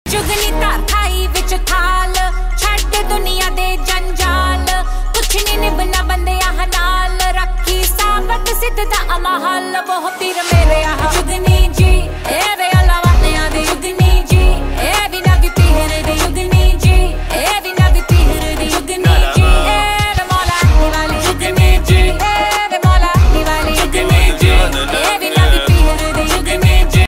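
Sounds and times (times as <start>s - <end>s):
Punjabi beats ringtone: 0.1s - 27.0s.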